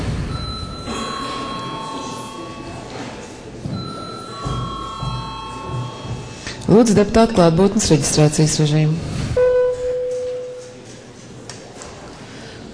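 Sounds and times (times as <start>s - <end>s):
faint room murmur: 0.0s - 12.7s
parliament chamber electric bell ringing: 0.3s - 3.2s, 3.8s - 6.6s, 9.4s - 10.8s
speech: 6.7s - 9.2s.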